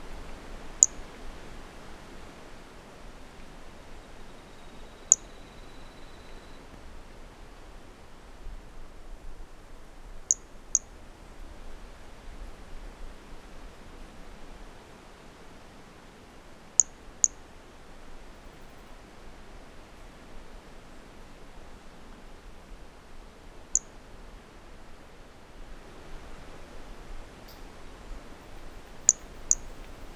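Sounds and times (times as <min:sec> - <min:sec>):
wind: 0:00.0 - 0:30.1
Brachycephalus mirissimus giving very high thin click-like notes: 0:05.1 - 0:05.3, 0:16.8 - 0:17.4, 0:29.1 - 0:29.7.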